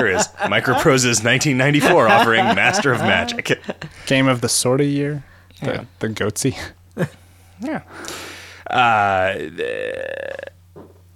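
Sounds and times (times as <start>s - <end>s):
laughter: 0.0s - 4.2s
speech: 0.0s - 10.5s
fart sound effect: 9.6s - 10.6s.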